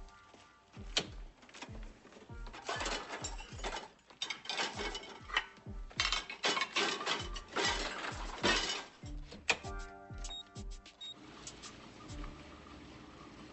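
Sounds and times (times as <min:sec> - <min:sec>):
dishes being loaded into a dishwasher: 0:01.1 - 0:09.7.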